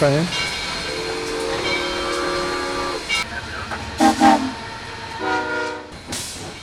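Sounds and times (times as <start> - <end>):
train rolling past with rumble and hiss: 0.0 - 6.6
train horn blasts: 0.9 - 3.0, 4.0 - 6.0.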